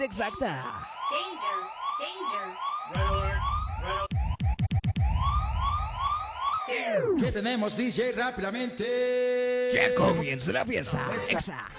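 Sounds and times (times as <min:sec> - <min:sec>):
speech: 0:00.0 - 0:04.1, 0:06.7 - 0:11.7
loud alarm siren wailing in rising sweeps: 0:00.0 - 0:07.3
deep booming bass: 0:03.0 - 0:06.5.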